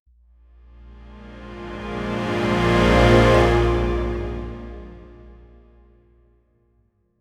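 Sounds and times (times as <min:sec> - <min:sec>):
orchestral whoosh: 0:00.8 - 0:05.7.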